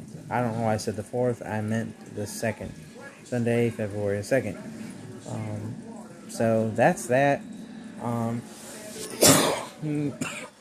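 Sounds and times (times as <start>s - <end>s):
speech: 0.3s - 9.1s, 9.8s - 10.5s
loud cough: 9.2s - 10.5s.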